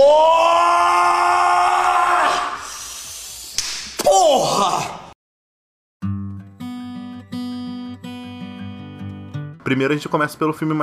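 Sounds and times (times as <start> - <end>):
man screaming: 0.0 - 2.8, 4.0 - 5.2
speech: 9.7 - 10.8.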